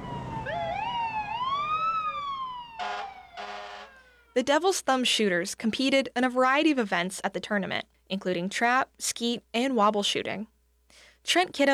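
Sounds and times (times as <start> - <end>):
fire truck sirens wailing in a noise parade: 0.0 - 4.4
short blaring fire truck horn blasts: 2.8 - 4.2
speech: 4.4 - 11.7.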